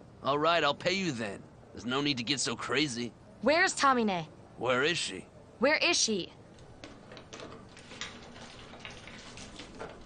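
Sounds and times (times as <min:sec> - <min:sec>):
speech: 0:00.2 - 0:06.4
gasoline pouring and splashing on surfaces: 0:07.7 - 0:10.0.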